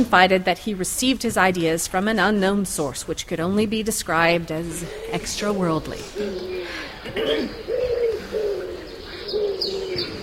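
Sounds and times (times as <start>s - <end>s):
speech: 0.0s - 7.7s
pigeons cooing: 4.8s - 10.2s.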